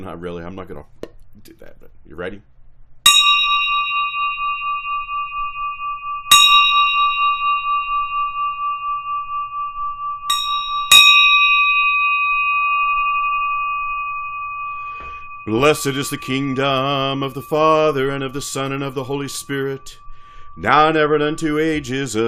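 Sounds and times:
speech: 0.0s - 2.6s, 15.4s - 20.0s, 20.6s - 22.2s
bell struck: 3.1s - 22.2s.

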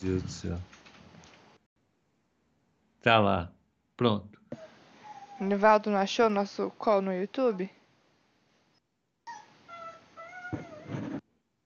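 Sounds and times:
speech: 0.0s - 0.8s, 3.0s - 4.6s, 5.4s - 7.8s
pet dog whimpering and whining: 4.6s - 5.6s, 9.3s - 11.0s.

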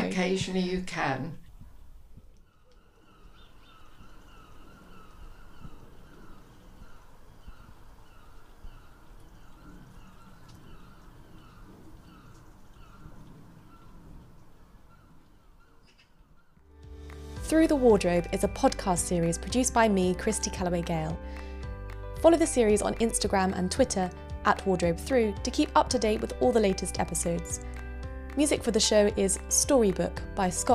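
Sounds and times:
steady outdoor noise near the sea: 0.0s - 17.2s
speech: 0.2s - 1.4s, 17.5s - 21.4s, 22.2s - 27.8s, 28.4s - 30.7s
seagulls calling near the sea: 2.4s - 16.6s.

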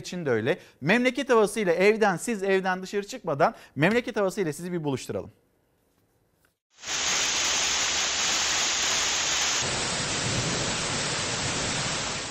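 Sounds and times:
speech: 0.0s - 5.4s, 6.7s - 7.1s
heavy rain downpour hissing: 6.8s - 12.3s.

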